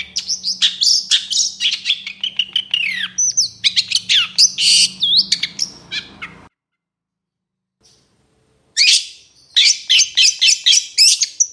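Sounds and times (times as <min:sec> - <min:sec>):
long-tailed shrike song: 0:00.0 - 0:06.5, 0:08.8 - 0:11.5.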